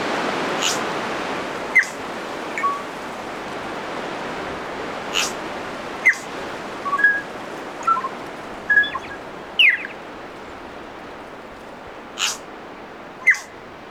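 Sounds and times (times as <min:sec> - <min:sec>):
steady wind-like hiss: 0:00.0 - 0:13.9
birds chirping and whistling on a remote island: 0:01.8 - 0:02.0, 0:02.6 - 0:02.8, 0:06.8 - 0:10.0, 0:13.2 - 0:13.5.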